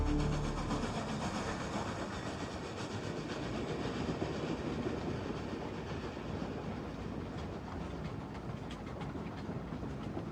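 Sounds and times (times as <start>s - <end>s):
train wheels clattering on rails: 0.1s - 10.3s.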